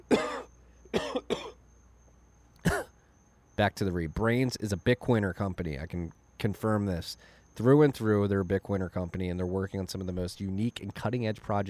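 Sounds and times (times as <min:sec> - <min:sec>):
person coughing: 0:00.0 - 0:01.6, 0:02.6 - 0:03.0
speech: 0:03.6 - 0:11.6.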